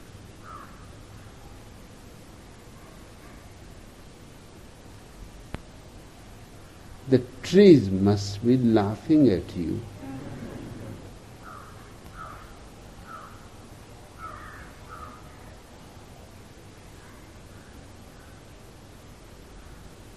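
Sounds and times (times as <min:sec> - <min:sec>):
steady hiss: 0:00.0 - 0:20.1
crows cawing: 0:00.4 - 0:00.9, 0:10.0 - 0:13.5, 0:14.2 - 0:15.4
speech: 0:07.1 - 0:09.9.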